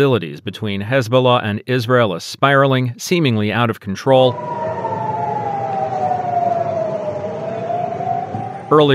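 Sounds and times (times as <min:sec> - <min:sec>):
speech: 0:00.0 - 0:04.6, 0:08.7 - 0:08.9
air raid siren wailing: 0:04.2 - 0:08.9
rumbling wash of noise: 0:04.2 - 0:08.9.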